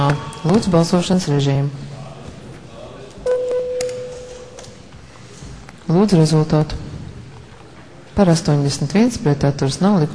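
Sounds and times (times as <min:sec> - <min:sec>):
speech: 0:00.0 - 0:01.9, 0:05.9 - 0:06.8, 0:08.2 - 0:10.1
murmur of the parliament hall: 0:00.0 - 0:09.5
parliament chamber bell ringing before a vote: 0:03.3 - 0:04.8.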